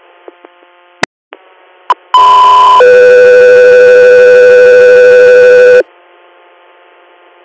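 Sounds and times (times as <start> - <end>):
radio dispatch electronic alert tone: 2.2 - 5.8.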